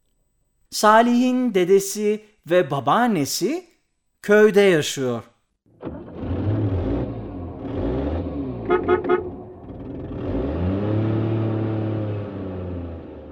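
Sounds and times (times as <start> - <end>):
speech: 0.8 - 5.3
car engine revving and accelerating: 5.8 - 13.3
car horn toots: 8.6 - 9.5.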